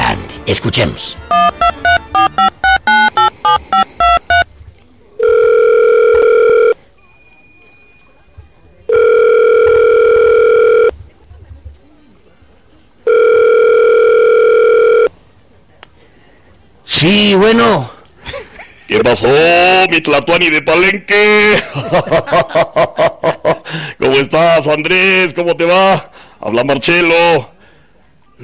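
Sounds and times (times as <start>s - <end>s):
speech: 0.5s - 2.3s, 17.0s - 17.9s, 18.9s - 23.1s, 24.1s - 27.5s
telephone keypad dialling tones: 1.3s - 4.5s, 5.2s - 6.8s, 8.9s - 10.9s, 13.1s - 15.1s
laughter: 18.2s - 19.2s, 21.5s - 23.7s.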